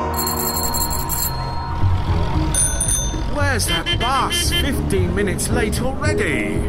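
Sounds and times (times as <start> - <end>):
bicycle bells ringing: 0.2 - 3.8
dense traffic rumble of buses and taxis on the Edgware Road: 1.3 - 6.6.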